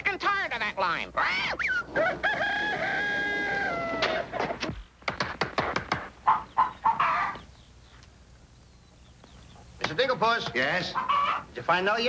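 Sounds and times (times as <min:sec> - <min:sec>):
chickens clucking rapidly: 0:00.6 - 0:12.0
speech: 0:00.7 - 0:03.1, 0:10.2 - 0:12.0
rooster crowing: 0:01.6 - 0:04.3, 0:06.2 - 0:07.5.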